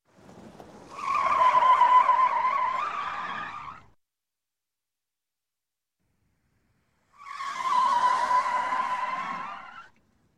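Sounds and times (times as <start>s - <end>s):
car tires squealing while turning hard: 0.2s - 3.9s, 7.2s - 9.9s.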